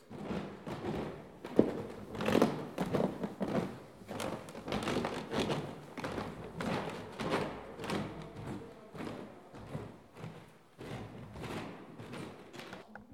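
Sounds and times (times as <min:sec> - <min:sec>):
creaking stairs: 0:00.1 - 0:13.1.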